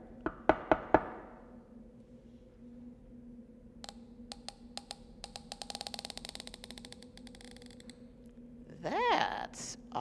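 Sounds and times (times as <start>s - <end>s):
knocking on a door: 0.2s - 1.4s.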